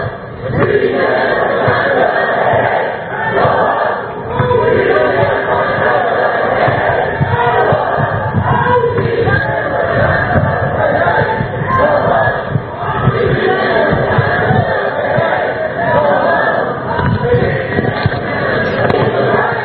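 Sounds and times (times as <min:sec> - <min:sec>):
large crowd of protest marchers chanting a slogan on a street: 0:00.0 - 0:19.6
scattered shouts: 0:00.0 - 0:19.6.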